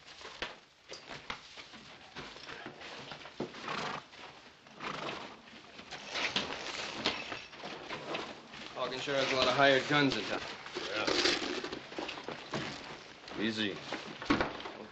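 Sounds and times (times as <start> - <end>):
creaking and shuffling: 0.0 - 14.9
hooves clopping on hard ground: 0.0 - 14.9
horse whinnying and snorting: 3.5 - 4.1, 4.8 - 7.5
speech: 8.9 - 10.6, 13.4 - 14.0.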